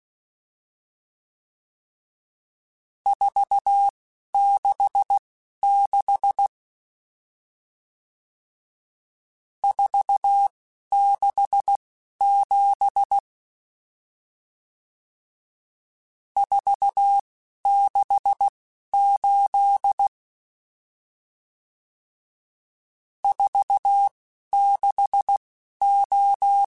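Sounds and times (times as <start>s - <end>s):
Morse code CW code groups: 3.1s - 6.5s, 9.7s - 13.2s, 16.4s - 20.1s, 23.3s - 26.6s.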